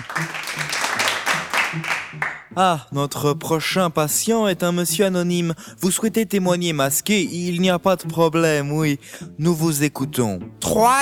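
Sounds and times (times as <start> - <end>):
audience applause: 0.0 - 2.5
speech: 0.2 - 1.1, 1.7 - 11.0.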